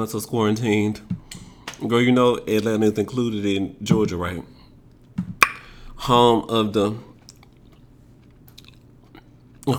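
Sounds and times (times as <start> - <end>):
speech: 0.0 - 4.6, 6.0 - 7.1
chewing close to the microphone: 7.2 - 9.7.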